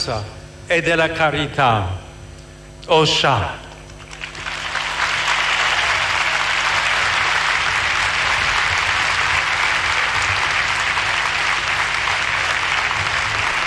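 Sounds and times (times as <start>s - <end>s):
speech: 0.0s - 2.0s, 2.8s - 3.6s
large crowd applauding in an open stadium: 3.7s - 13.6s.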